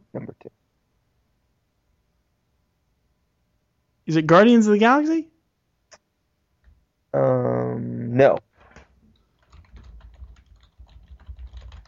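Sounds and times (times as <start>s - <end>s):
speech: 4.1s - 5.3s, 8.2s - 8.5s
rapid typing on a computer keyboard: 8.6s - 11.8s.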